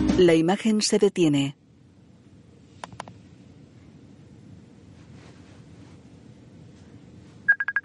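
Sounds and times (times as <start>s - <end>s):
speech: 0.2s - 1.6s
steady low hiss: 0.2s - 7.5s
Facebook notification beeps on a phone: 7.5s - 7.8s.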